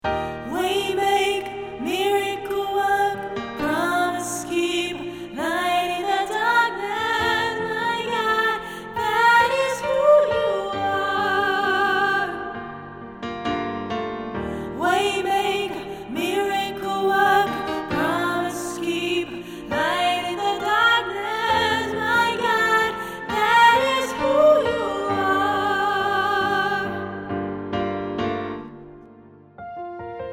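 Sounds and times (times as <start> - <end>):
soprano choir vocal part: 0.0 - 29.4.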